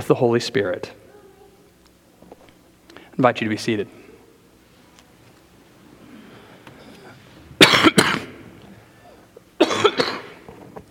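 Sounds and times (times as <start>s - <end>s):
speech: 0.0s - 1.0s, 3.2s - 4.0s
harsh heavy hacking coughing: 7.6s - 8.4s, 9.0s - 10.5s.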